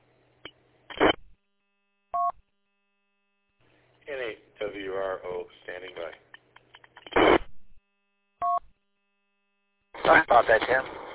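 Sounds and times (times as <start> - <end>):
speech: 4.8 - 6.2, 10.1 - 11.0
crackly static burst on scanner: 7.0 - 7.6, 10.0 - 11.1
GMRS radio call dual-tone beep on scanner: 8.4 - 8.6.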